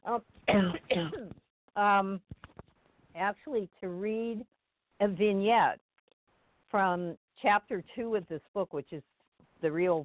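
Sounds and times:
speech: 0.0 - 1.2, 1.8 - 2.3, 3.2 - 5.8, 6.7 - 10.0
person coughing: 0.5 - 1.4.

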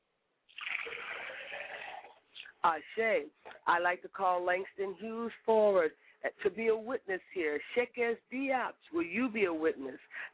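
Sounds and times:
liquid poured out as a libation toward the north: 0.5 - 2.5
speech: 2.6 - 10.3.

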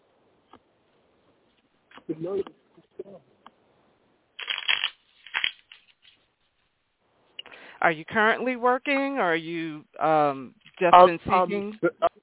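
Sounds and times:
speech: 2.1 - 3.4, 7.8 - 12.2
deck of cards being shuffled for a card reading: 4.4 - 6.3.

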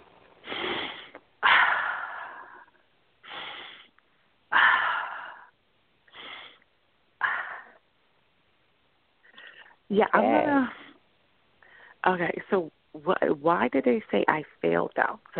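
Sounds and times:
deep breaths: 0.4 - 7.9, 9.2 - 9.9, 11.6 - 12.0
speech: 9.9 - 10.8, 12.0 - 15.3.

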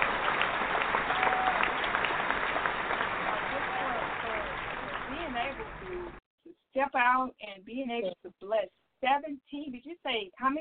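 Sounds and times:
group applauding: 0.0 - 6.2
speech: 6.8 - 10.6.

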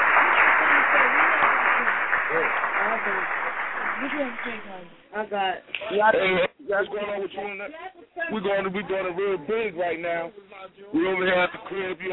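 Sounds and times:
applause of many hands: 0.0 - 5.0
speech: 4.0 - 12.1.

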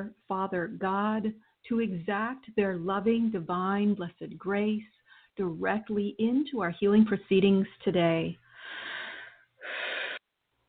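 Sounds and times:
speech: 0.0 - 8.9
deep breathing: 8.5 - 10.2.

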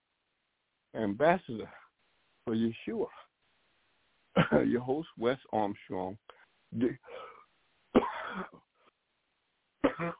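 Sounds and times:
speech: 1.0 - 1.8, 2.4 - 3.2, 4.4 - 7.2
man coughing: 4.4 - 4.7, 6.8 - 7.4, 8.0 - 8.6, 9.8 - 10.1.

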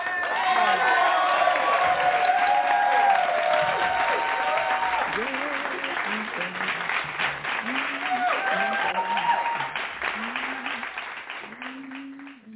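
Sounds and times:
faint audience cheers: 0.0 - 6.0, 7.6 - 10.9
audience applause with dense rapid clapping: 0.0 - 12.5.

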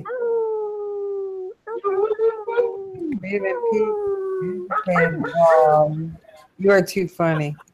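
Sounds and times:
people on a live online broadcast howling like wolves: 0.0 - 6.1
speech: 3.3 - 7.7.

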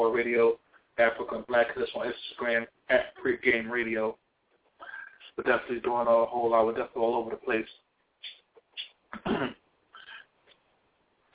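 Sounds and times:
speech: 0.0 - 4.2, 5.4 - 7.8
person clearing throat: 9.2 - 9.6.

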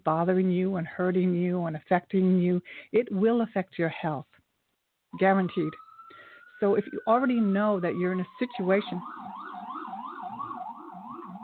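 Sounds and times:
speech: 0.0 - 4.4, 5.2 - 5.8, 6.6 - 9.3
sirens wailing along a New York City street: 5.2 - 11.4.

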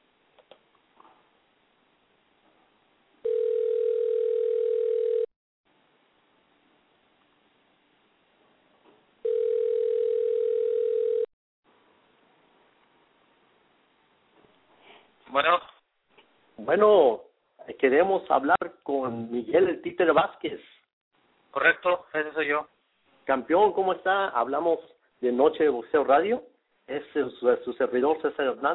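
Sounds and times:
ringback tone of an outgoing telephone call: 3.2 - 5.3, 9.2 - 11.3
speech: 16.7 - 17.2, 17.8 - 20.8, 21.5 - 22.7, 23.3 - 28.7.

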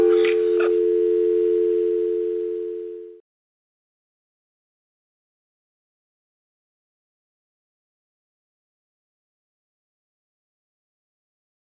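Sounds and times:
steady loud telephone tone after caller hangs up: 0.0 - 3.2.

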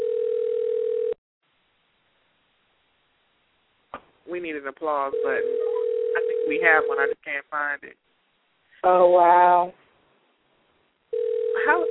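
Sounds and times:
telephone dial tone after placing a call: 0.0 - 1.2, 5.2 - 6.6, 11.2 - 11.8
speech: 4.3 - 5.7, 6.4 - 8.0, 8.8 - 9.8.

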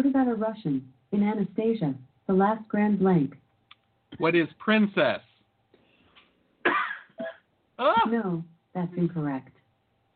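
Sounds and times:
speech: 0.0 - 3.4, 4.1 - 5.3, 7.8 - 9.6
harsh rasping coughs: 6.6 - 8.2.

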